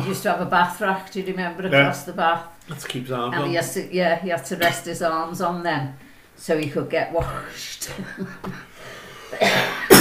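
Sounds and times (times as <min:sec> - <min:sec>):
speech: 0:00.0 - 0:08.7, 0:09.3 - 0:09.8
two people coughing, one choking on snacks: 0:09.3 - 0:09.9.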